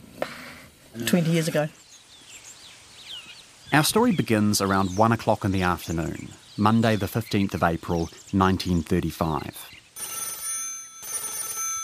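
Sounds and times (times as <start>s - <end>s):
speech: 1.0s - 1.8s, 3.7s - 9.8s
office telephone ringing with an incoming call: 10.0s - 11.8s.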